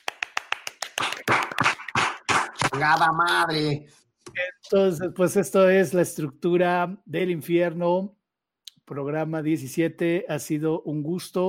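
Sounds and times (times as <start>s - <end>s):
applause: 0.0s - 3.1s
hand claps: 0.0s - 3.2s
speech: 2.8s - 8.2s, 8.9s - 11.4s.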